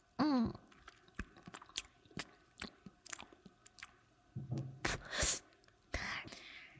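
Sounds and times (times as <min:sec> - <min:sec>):
wet chewing of a banana: 0:00.5 - 0:04.0
breathy whisper-like noises: 0:04.9 - 0:06.7.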